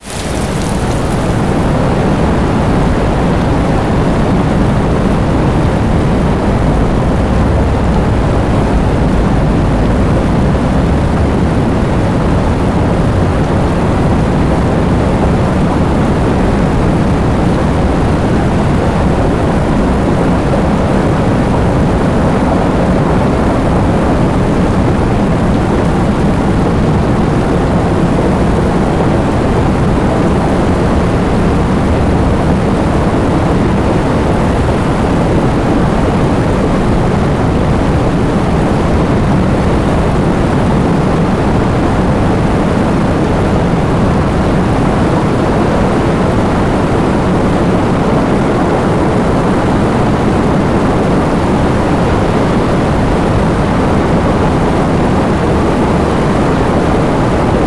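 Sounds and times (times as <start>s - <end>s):
heavy rain: 0.0s - 57.6s.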